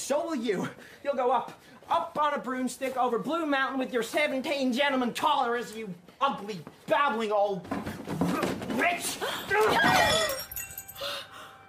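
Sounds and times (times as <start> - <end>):
speech: 0.1 - 8.2, 8.8 - 10.4
glass figurines shattering: 9.0 - 11.2
person gasping: 9.1 - 9.5.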